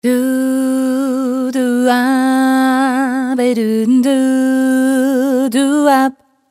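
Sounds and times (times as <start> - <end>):
person singing: 0.0 - 6.2.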